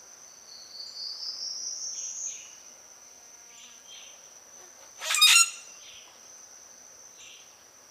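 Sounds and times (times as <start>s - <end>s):
steady high insect drone: 0.0s - 7.9s
common grackle harsh squeaky call: 5.0s - 5.7s.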